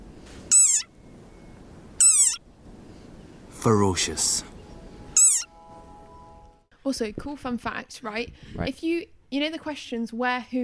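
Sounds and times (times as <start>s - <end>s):
angry frog squealing: 0.5s - 0.9s, 2.0s - 2.4s, 5.2s - 5.5s
speech: 3.6s - 4.5s, 6.8s - 10.6s.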